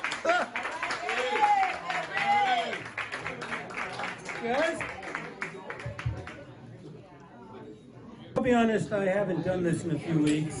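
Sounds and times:
comedy show audience applauding: 0.0 - 6.5
speech: 4.4 - 5.0, 8.5 - 10.5.

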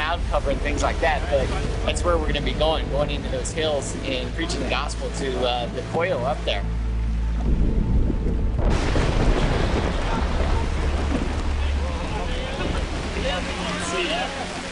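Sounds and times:
heavy steady rain: 0.0 - 5.8, 7.2 - 14.7
low rumbling undertone: 0.0 - 14.7
speech: 0.1 - 6.8.

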